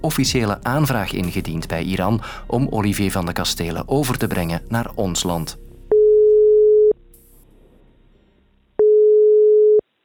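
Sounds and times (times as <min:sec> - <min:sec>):
speech: 0:00.0 - 0:05.7
ringback tone of an outgoing telephone call: 0:05.9 - 0:07.0, 0:08.8 - 0:09.8.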